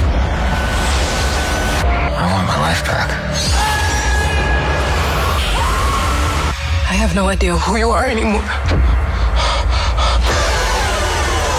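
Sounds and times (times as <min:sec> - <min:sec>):
dark low rumble: 0:00.0 - 0:11.5
speech: 0:07.0 - 0:08.9
sharp heavy breathing in a movie trailer: 0:08.5 - 0:10.7.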